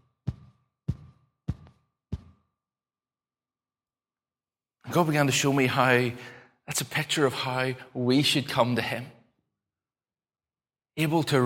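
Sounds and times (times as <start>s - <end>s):
soft low heartbeat thumps: 0.0s - 2.4s
speech: 4.9s - 9.2s, 11.0s - 11.4s.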